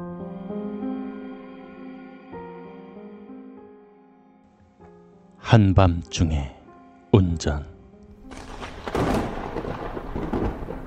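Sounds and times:
speech: 5.5s - 7.7s
loud rumbling crack of thunder: 8.2s - 10.8s
rain in a thunderstorm: 8.3s - 10.8s.

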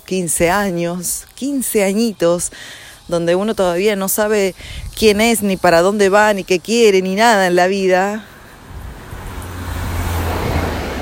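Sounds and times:
speech: 0.1s - 8.3s
car passing by with road rumble and tire hiss: 8.4s - 10.9s.

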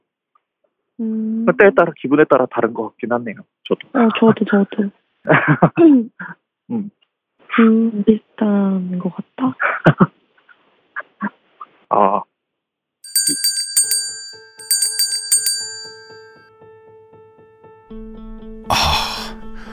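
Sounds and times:
speech: 1.0s - 10.2s, 11.2s - 12.3s, 13.3s - 13.6s
bright bell ringing: 13.0s - 16.5s.

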